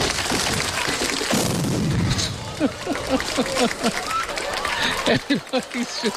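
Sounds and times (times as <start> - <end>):
stage noise and crowd din: 0.0 - 6.1
explosion of drum kit on stage: 1.3 - 2.6
laughter: 2.2 - 6.1
speech: 2.6 - 4.2, 5.0 - 6.1.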